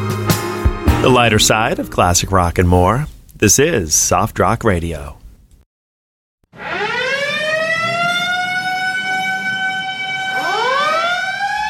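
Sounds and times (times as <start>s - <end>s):
speech: 1.0s - 5.2s
loud siren wailing: 6.5s - 11.6s.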